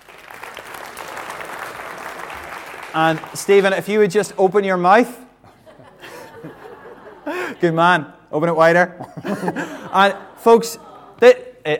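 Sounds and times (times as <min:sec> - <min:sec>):
audience applause: 0:00.0 - 0:03.7
speech: 0:02.9 - 0:05.2, 0:07.6 - 0:11.7
laughter: 0:05.4 - 0:07.9, 0:08.9 - 0:11.7.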